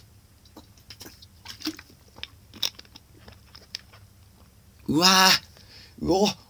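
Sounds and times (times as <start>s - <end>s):
person gulping and swallowing water after waking: 0.5s - 4.5s
speech: 4.9s - 5.5s, 6.1s - 6.4s.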